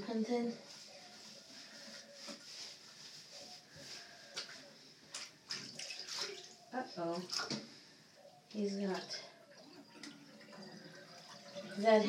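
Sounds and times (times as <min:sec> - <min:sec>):
speech: 0:00.1 - 0:00.8, 0:07.0 - 0:07.7, 0:08.5 - 0:09.3, 0:11.8 - 0:12.0
water splashing and running in a bathtub as a dog is rinsed: 0:04.3 - 0:07.8, 0:08.4 - 0:12.0.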